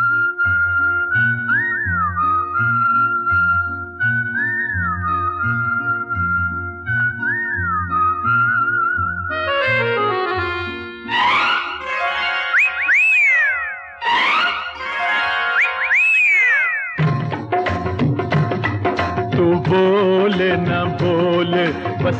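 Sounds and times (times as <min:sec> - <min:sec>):
clear loud whistled melody with wavering trilled phrases: 0:00.0 - 0:17.2
steady rhythmic musical backing: 0:09.3 - 0:22.1.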